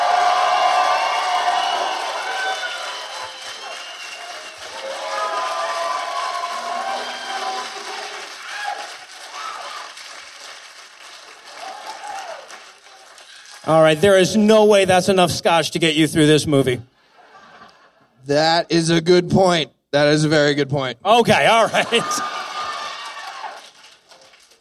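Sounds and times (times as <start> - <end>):
audience whoops and cheers: 0.0 - 10.2, 11.5 - 12.7, 21.7 - 23.8
audience applauding: 0.0 - 14.2, 21.4 - 24.5
speech: 13.7 - 16.9, 18.3 - 22.3
laughter: 17.0 - 18.2, 21.4 - 22.6.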